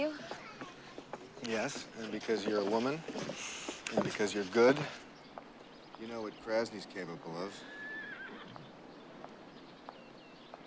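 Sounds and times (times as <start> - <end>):
speech: 1.4 - 5.0, 6.0 - 7.8
white horse neighing in a corral: 7.6 - 8.6.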